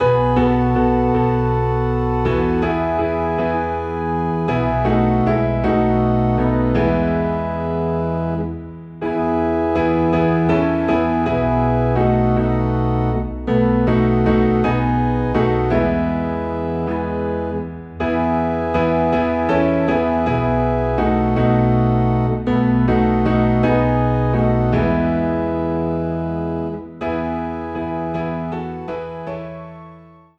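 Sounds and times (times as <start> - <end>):
piano playing in E: 0.0 - 30.3.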